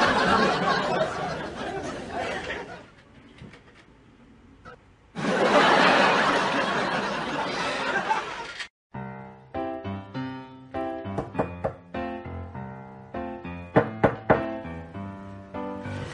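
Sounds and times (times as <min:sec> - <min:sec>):
laughter: 0:00.0 - 0:03.0, 0:05.2 - 0:08.6
knocking on a door: 0:11.1 - 0:11.9, 0:13.8 - 0:14.5.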